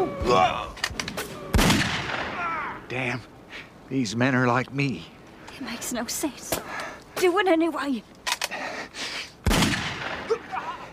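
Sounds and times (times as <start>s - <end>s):
speech: 0.2s - 0.8s, 2.9s - 8.2s
burst of gunfire: 1.1s - 2.4s, 9.4s - 10.4s.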